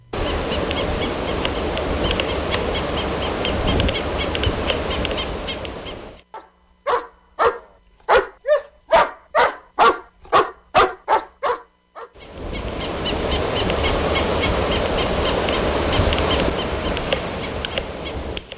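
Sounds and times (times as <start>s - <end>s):
wind or surf noise: 0.0s - 6.2s, 10.8s - 18.5s
dog barking at a beach: 6.3s - 12.2s.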